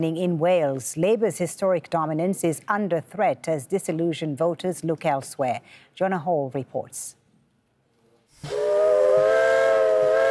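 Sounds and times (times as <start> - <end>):
speech: 0.0 - 7.2, 8.4 - 8.8
steam locomotive whistle on a railway line in Wales: 8.4 - 10.2.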